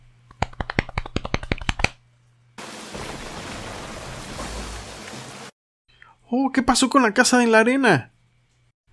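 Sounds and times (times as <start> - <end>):
group patting legs imitating rain: 0.4 - 1.9
speech: 6.3 - 8.1.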